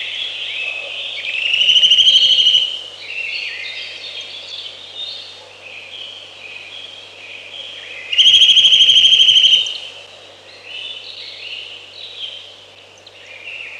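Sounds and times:
Eurasian nuthatch song: 1.4 - 2.7, 8.1 - 9.8.

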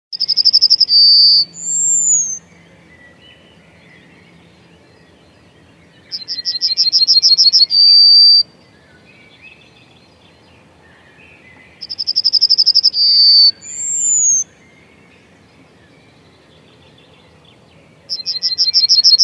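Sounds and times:
yellowhammer singing: 0.2 - 19.2
speech: 13.0 - 13.4.

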